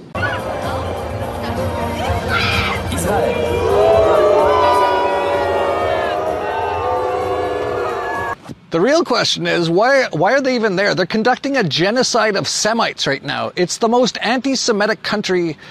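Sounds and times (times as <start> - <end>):
large crowd booing athletes on boats: 0.0 - 8.4
speech: 8.7 - 15.6.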